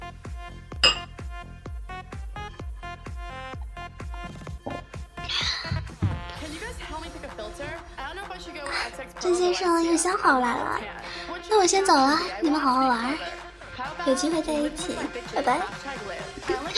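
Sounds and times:
rhythmic music: 0.0 - 16.7
glasses clinking in a toast: 0.8 - 1.1
speech: 8.4 - 13.3, 14.0 - 16.2.

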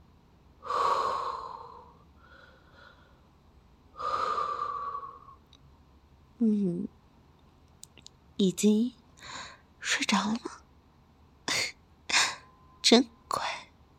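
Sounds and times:
slow deep breathing: 0.6 - 5.4
speech: 6.4 - 6.9, 8.4 - 10.6, 12.9 - 13.5.

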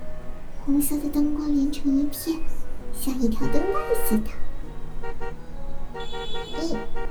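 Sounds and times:
speech: 0.7 - 4.5, 6.0 - 7.0
car horns honking in a traffic jam at a congested intersection: 3.4 - 4.2, 4.9 - 7.0.

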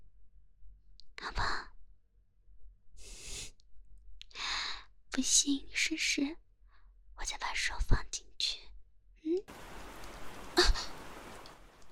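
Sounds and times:
speech: 5.2 - 6.4, 7.2 - 8.6
steady hiss of rain: 9.5 - 11.9.

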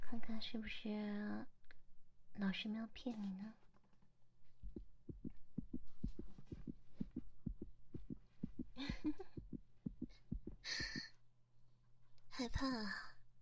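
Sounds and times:
speech: 0.1 - 1.6, 2.4 - 3.6, 12.4 - 13.1
rapid heartbeat: 4.6 - 11.1.

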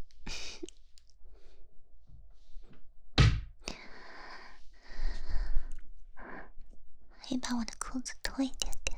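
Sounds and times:
door pulled shut with a sharp heavy thunk: 3.2 - 3.5
speech: 7.3 - 8.8.

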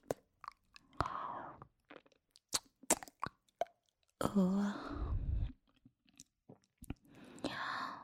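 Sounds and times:
chewing tasty food: 0.1 - 1.1, 1.7 - 4.2, 5.6 - 7.1
speech: 4.3 - 5.0.

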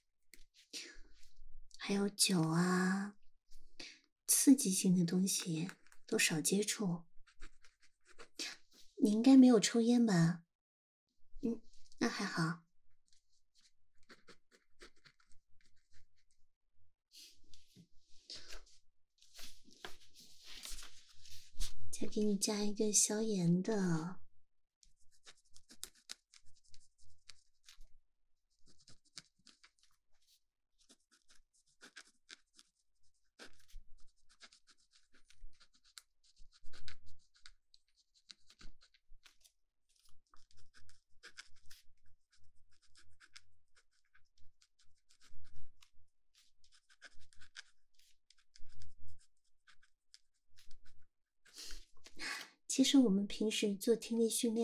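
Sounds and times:
speech: 1.9 - 3.2, 4.4 - 7.1, 9.0 - 10.4, 11.4 - 12.6, 22.1 - 24.2, 52.8 - 54.6
pen or pencil scratching while writing on paper: 4.4 - 8.9, 13.0 - 16.4, 24.8 - 52.2.

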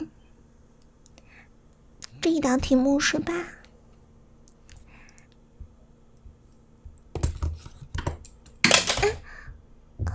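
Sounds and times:
speech: 2.2 - 3.6
pen falling onto the floor: 7.2 - 9.2.

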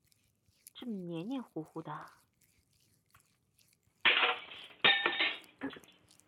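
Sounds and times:
speech: 0.8 - 2.2
ringing clinking fragments of a drinking cup: 4.1 - 5.8
drinking cup shattering: 4.1 - 5.9.

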